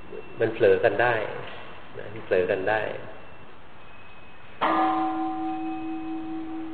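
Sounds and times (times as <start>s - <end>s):
speech: 0.4s - 3.2s
single bell struck with a bright metallic clang: 4.6s - 6.7s.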